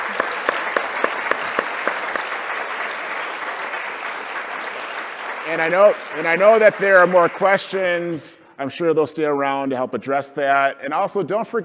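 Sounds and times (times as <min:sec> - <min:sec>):
one person clapping in a quick regular rhythm: 0:00.0 - 0:05.5
audience applauding: 0:00.0 - 0:08.2
speech: 0:05.5 - 0:11.6.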